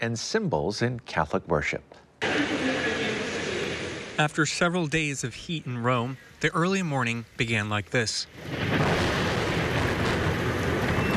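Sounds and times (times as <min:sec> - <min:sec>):
speech: 0:00.0 - 0:02.6, 0:04.2 - 0:08.8
heavy rain: 0:02.2 - 0:11.1
deep thunder rumbling: 0:08.3 - 0:11.1.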